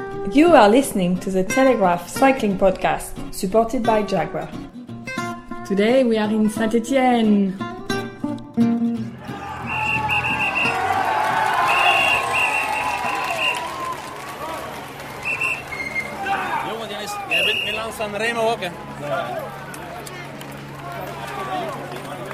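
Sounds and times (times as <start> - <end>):
speech: 0.3 - 4.7, 5.7 - 7.7
crowd cheering at the Tour de France stage finish in Saint-Étienne: 9.0 - 22.3
people shouting: 9.1 - 20.1, 20.7 - 22.2
people chattering: 9.2 - 22.3
whistle-like or horn-like tones: 9.3 - 13.9, 15.1 - 16.2, 17.1 - 18.0.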